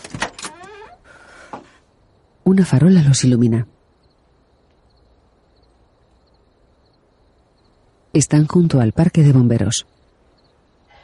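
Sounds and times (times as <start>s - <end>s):
pickup truck door opening: 0.0s - 1.8s
speech: 2.5s - 3.8s, 8.2s - 10.0s.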